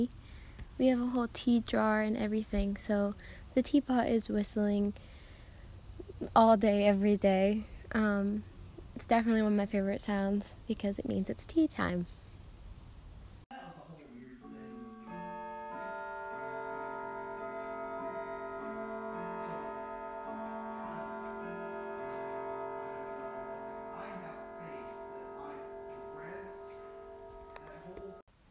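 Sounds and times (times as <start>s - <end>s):
speech: 0.0s - 0.2s, 0.8s - 5.1s, 6.2s - 12.2s
grandfather clock in a home foyer chiming: 14.4s - 28.2s.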